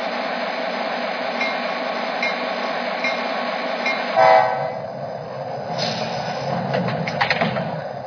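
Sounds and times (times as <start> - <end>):
passenger train rumbling at a station platform: 0.0 - 8.0
brief loud horn-like tone of a passenger train: 4.1 - 4.8.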